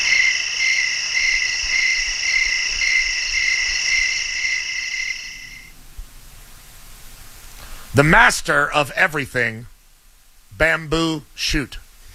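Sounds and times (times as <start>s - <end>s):
chorus of crickets chirping in a high pulsing trill: 0.0s - 5.8s
speech: 8.0s - 9.7s, 10.6s - 11.8s.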